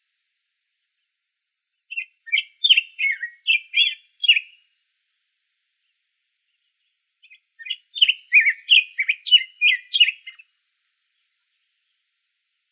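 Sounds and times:
black-headed grosbeak singing in Arizona: 1.8s - 4.7s, 5.8s - 12.3s.

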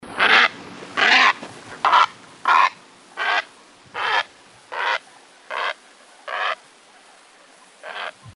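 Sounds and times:
Great blue heron giving harsh hoarse croaking calls: 0.2s - 6.6s, 7.8s - 8.2s.

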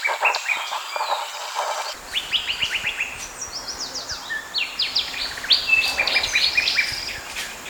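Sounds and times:
other birds chirping: 0.0s - 7.6s
Sinaloa wren singing: 2.0s - 7.6s
faint steady hiss: 2.0s - 7.6s.

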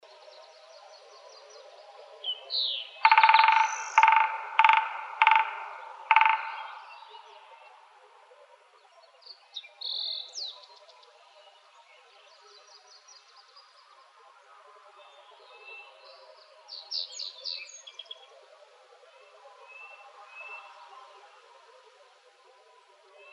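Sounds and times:
woodpeckers drumming: 3.0s - 7.9s.

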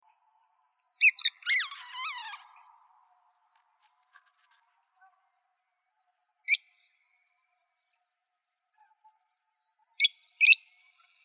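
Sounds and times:
parrot squealing and chattering: 1.1s - 2.4s.

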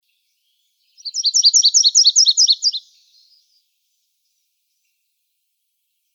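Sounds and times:
Virginia's warbler singing in Arizona: 0.1s - 5.0s.

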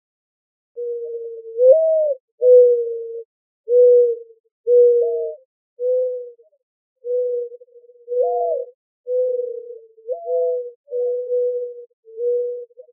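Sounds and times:
mourning dove cooing in Arizona: 0.8s - 12.9s.

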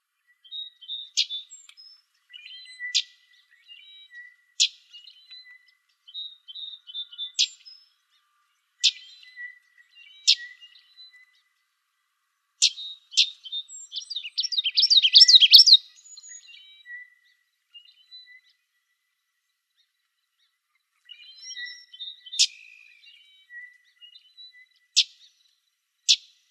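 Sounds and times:
Common Yellowthroat calls: 0.3s - 11.8s, 12.5s - 18.9s, 19.8s - 26.5s
other warblers calling: 14.0s - 15.8s.

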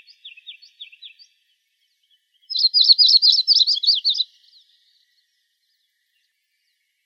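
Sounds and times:
yellow-rumped warbler soft chirps: 0.0s - 7.0s
yellow-rumped warbler loud rapid warbling trill: 2.5s - 4.2s.

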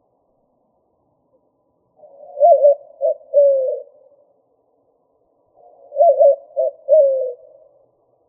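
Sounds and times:
white-winged dove cooing: 2.0s - 4.2s, 5.6s - 7.8s.

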